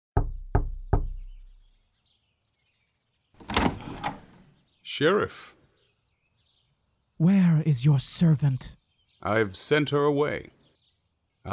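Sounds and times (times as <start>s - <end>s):
loud knocking on a large heavy wooden mansion door: 0.2s - 1.5s
heavy wooden mansion door creaking and scraping open: 3.4s - 4.6s
speech: 4.9s - 5.6s, 7.2s - 10.6s.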